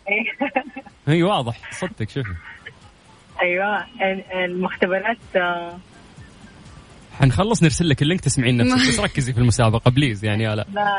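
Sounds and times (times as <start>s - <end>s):
speech: 0.1s - 2.6s, 3.4s - 5.9s, 7.2s - 10.9s
caller's radio playing a broadcast over a mobile phone call: 1.4s - 2.7s, 8.6s - 9.3s
laughter: 8.6s - 9.3s.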